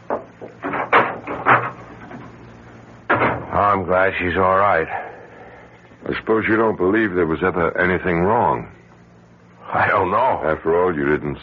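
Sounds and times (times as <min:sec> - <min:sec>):
wooden door opening and closing: 0:00.1 - 0:02.4
speech: 0:03.8 - 0:05.1, 0:06.1 - 0:08.8, 0:09.7 - 0:11.4.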